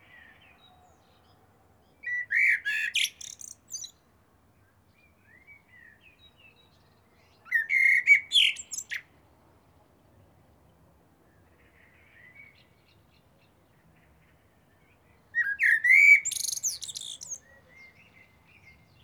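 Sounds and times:
common blackbird Turdus merula singing: 0.1 - 4.0, 5.2 - 9.1, 14.9 - 19.0.

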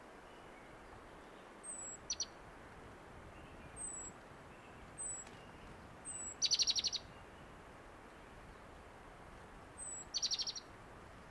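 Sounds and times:
steady background hiss: 0.0 - 11.2
great tit Parus major calling with high thin whistles and chattering: 1.6 - 2.4, 6.1 - 7.1, 9.8 - 10.7.

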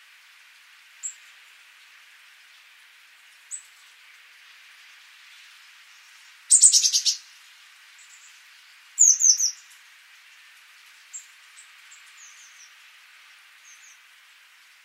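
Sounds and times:
soft background hiss: 0.0 - 14.8
Eurasian blue tit Cyanistes caeruleus scolding calls: 6.5 - 7.2, 9.0 - 9.6.

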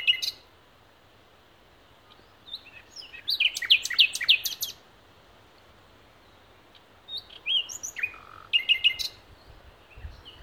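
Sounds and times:
common nightingale Luscinia megarhynchos singing: 0.0 - 0.5, 2.0 - 4.9, 6.1 - 10.4.

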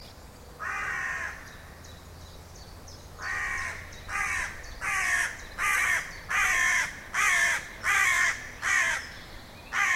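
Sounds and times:
background noise: 0.0 - 9.9
carrion crow Corvus corone cawing harshly: 0.6 - 1.5, 3.2 - 9.1, 9.7 - 9.9.

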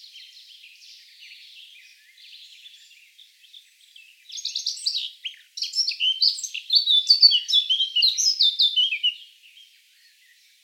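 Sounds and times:
Eurasian blackcap Sylvia atricapilla song: 3.9 - 9.3.

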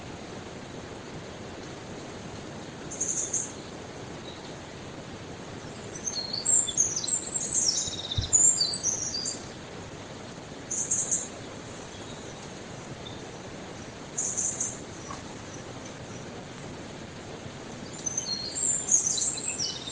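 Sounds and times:
background hiss: 0.0 - 19.9
Eurasian wren Troglodytes troglodytes uttering short high rapid note groups: 2.9 - 4.6, 5.6 - 9.7, 10.5 - 16.4, 17.7 - 19.9
soft thump: 8.2 - 8.4.

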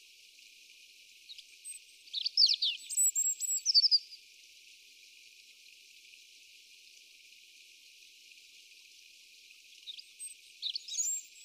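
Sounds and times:
European robin singing: 1.3 - 4.2, 9.9 - 11.4.

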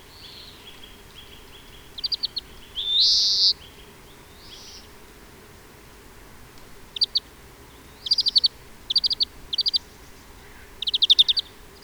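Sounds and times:
European greenfinch Chloris chloris chattering and twittering: 1.3 - 3.6, 6.9 - 7.3, 7.9 - 11.8.

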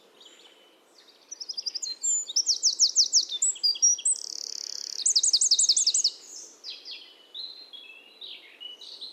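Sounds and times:
Eurasian wren Troglodytes troglodytes singing: 0.2 - 9.1.

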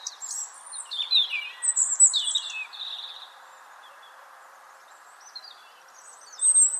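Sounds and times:
European robin Erithacus rubecula singing: 0.0 - 6.7.

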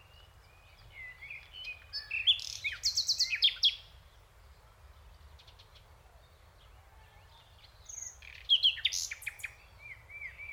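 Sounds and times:
common nightingale Luscinia megarhynchos singing: 0.0 - 10.5.

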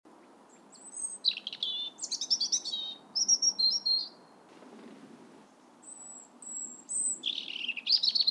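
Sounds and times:
European robin Erithacus rubecula singing: 0.5 - 4.2, 5.8 - 8.2.

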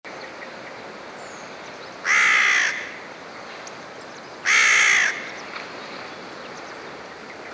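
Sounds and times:
carrion crow Corvus corone giving harsh grating caws: 2.0 - 3.0, 4.4 - 5.4.

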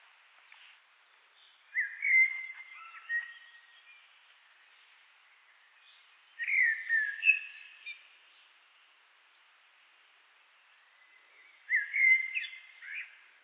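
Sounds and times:
common blackbird song: 0.0 - 9.5, 10.4 - 13.4.

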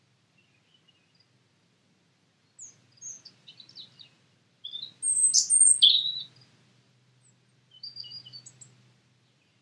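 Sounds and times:
European robin Erithacus rubecula singing: 2.6 - 6.5, 7.7 - 8.7.

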